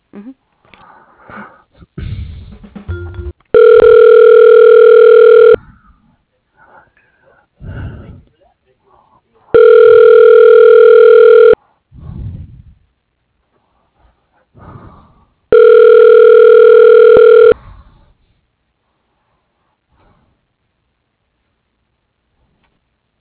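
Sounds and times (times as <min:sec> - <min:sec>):
faint breathing on the phone line: 0:00.7 - 0:02.4, 0:05.6 - 0:09.5, 0:11.6 - 0:15.5, 0:17.6 - 0:20.5
telephone ringback tone during call transfer at a city commission office: 0:03.0 - 0:05.6, 0:09.6 - 0:11.6, 0:15.5 - 0:17.6.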